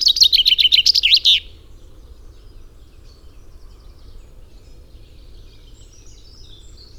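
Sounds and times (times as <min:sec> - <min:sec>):
common chaffinch Fringilla coelebs song: 0:00.0 - 0:01.6.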